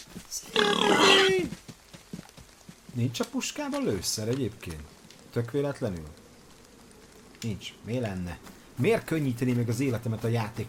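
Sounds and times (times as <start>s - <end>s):
pig in a video game squealing grunt: 0.5s - 1.5s
speech: 3.0s - 6.2s, 7.4s - 10.6s.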